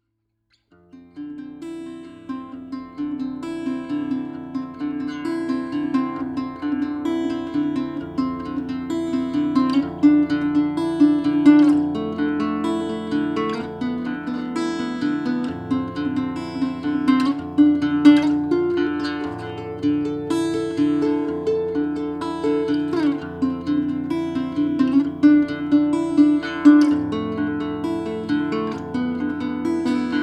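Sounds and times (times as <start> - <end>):
guitar recorded with capsule only: 0.6 - 30.2.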